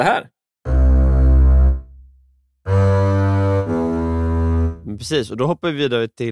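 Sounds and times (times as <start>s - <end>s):
speech: 0.0s - 0.3s, 5.0s - 6.3s
bowed double bass notes: 0.7s - 5.3s.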